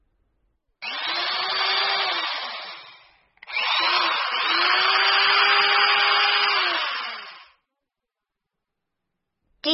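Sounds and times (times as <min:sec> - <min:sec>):
power drill whirring: 0:00.8 - 0:07.6.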